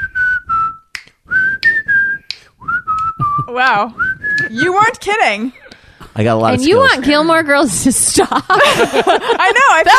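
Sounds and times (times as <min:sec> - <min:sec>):
person whistling a wavering tune: 0:00.0 - 0:04.9
crisp finger snaps: 0:00.8 - 0:03.3
speech: 0:03.5 - 0:05.6, 0:06.2 - 0:09.9
laughter: 0:08.2 - 0:09.9.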